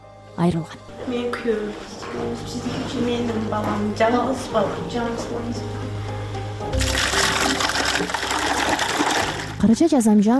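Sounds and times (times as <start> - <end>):
speech: 0.4 - 6.0, 9.6 - 10.3
water gushing and splashing as buckets are filled: 6.7 - 9.7.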